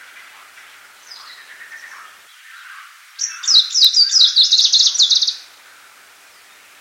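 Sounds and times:
icterine warbler singing: 0:00.3 - 0:05.5.

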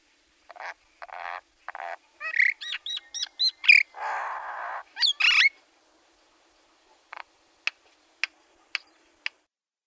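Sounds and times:
Common myna calls: 0:00.5 - 0:05.6.

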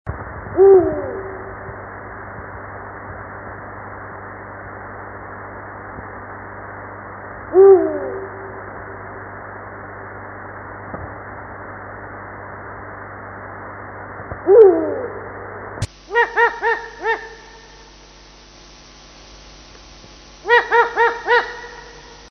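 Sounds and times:
eagle-owl: 0:00.6 - 0:01.7, 0:07.6 - 0:09.0, 0:16.1 - 0:17.7, 0:20.4 - 0:22.2.

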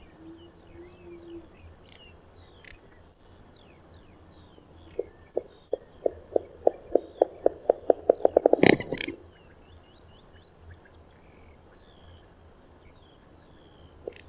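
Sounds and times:
faint birds whistling: 0:00.0 - 0:14.2
little bustard dry pulses: 0:07.5 - 0:09.3.

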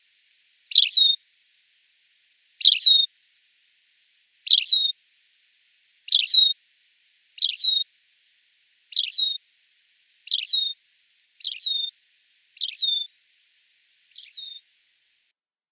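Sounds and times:
tawny pipit song: 0:00.7 - 0:01.2, 0:02.6 - 0:03.1, 0:04.4 - 0:05.0, 0:06.1 - 0:06.6, 0:07.4 - 0:07.9, 0:08.9 - 0:09.4, 0:10.2 - 0:13.2, 0:14.0 - 0:14.8.

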